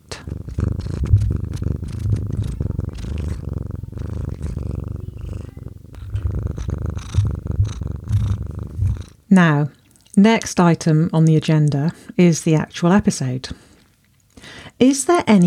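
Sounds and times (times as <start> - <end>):
cat purring on a person's lap into a microphone: 0.0 - 9.6
speech: 9.4 - 13.7, 14.8 - 15.4.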